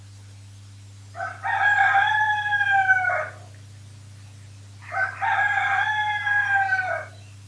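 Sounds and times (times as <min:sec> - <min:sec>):
low steady hum: 0:00.0 - 0:07.4
rooster crowing: 0:01.1 - 0:03.5, 0:04.8 - 0:07.2.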